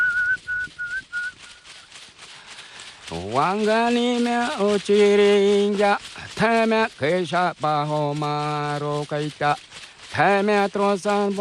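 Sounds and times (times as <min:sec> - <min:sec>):
man whistling a clear steady tone: 0:00.0 - 0:01.9
speech: 0:03.1 - 0:11.3.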